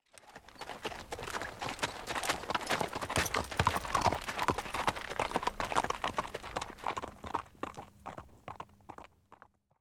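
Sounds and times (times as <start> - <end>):
horses: 0.0 - 9.6.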